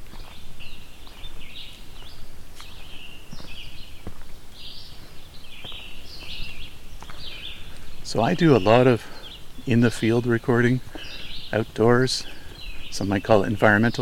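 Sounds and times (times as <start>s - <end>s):
birds singing outdoors including red-eyed vireos: 0.0s - 14.0s
speech: 8.1s - 14.0s.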